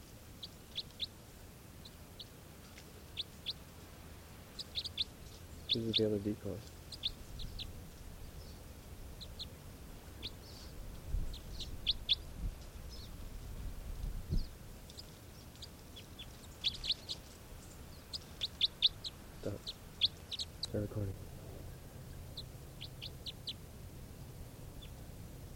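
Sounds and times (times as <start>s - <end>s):
background rumble: 0.0s - 25.5s
wild juvenile Red Crossbill calls: 4.5s - 8.6s, 9.2s - 12.3s, 14.4s - 20.9s, 21.6s - 23.6s
speech: 5.7s - 6.8s.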